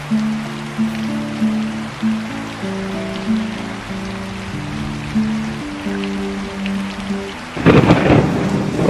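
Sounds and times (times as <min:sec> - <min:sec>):
rain drumming on rooftops during an electrical storm: 0:00.0 - 0:08.8
slow melodic music: 0:00.0 - 0:08.8
loud crack of thunder: 0:07.6 - 0:08.8.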